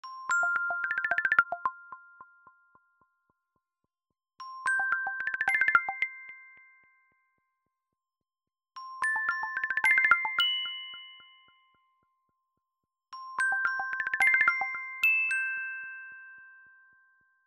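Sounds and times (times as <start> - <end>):
ringtone: 0.2 - 2.9, 4.6 - 6.7, 9.0 - 11.6, 13.4 - 16.9.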